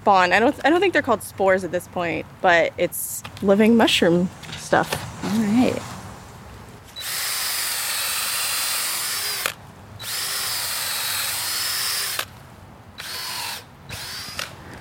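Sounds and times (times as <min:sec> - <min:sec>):
speech: 0:00.0 - 0:05.9
power drill boring holes for growing mushrooms from spawn: 0:06.9 - 0:12.3, 0:13.0 - 0:14.6.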